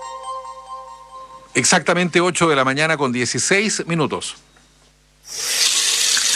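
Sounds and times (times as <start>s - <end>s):
speech: 1.6s - 4.5s
faucet turned on and water gushing: 5.3s - 6.3s.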